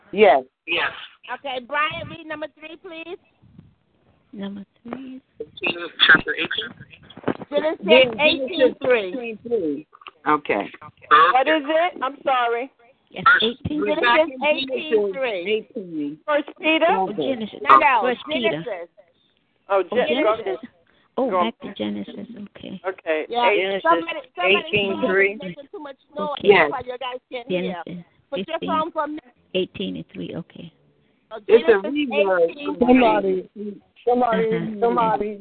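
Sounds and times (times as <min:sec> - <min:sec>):
tinny voices through a telephone line on speakerphone: 0:00.0 - 0:03.8, 0:04.4 - 0:30.7, 0:31.3 - 0:35.4
speech: 0:00.1 - 0:03.4, 0:04.3 - 0:19.0, 0:19.7 - 0:35.4.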